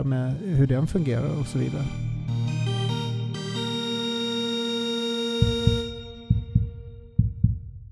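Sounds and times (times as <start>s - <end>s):
speech: 0.0s - 2.4s
sustained synth chord: 0.0s - 7.2s
heartbeat sound effect lub-dub thumps: 5.4s - 7.9s.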